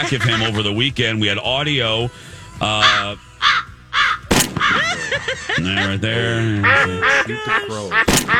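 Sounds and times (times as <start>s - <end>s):
duck quacking: 0.0s - 0.9s, 1.8s - 8.3s
speech: 0.0s - 3.3s, 5.1s - 8.3s
laughter: 0.0s - 3.5s, 4.5s - 8.3s.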